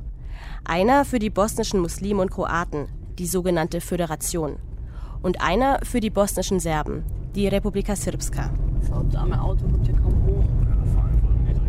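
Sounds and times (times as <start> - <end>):
road noise: 0.0 - 11.6
speech: 0.6 - 10.2
small car engine droning while climbing a winding mountain road: 4.6 - 11.6.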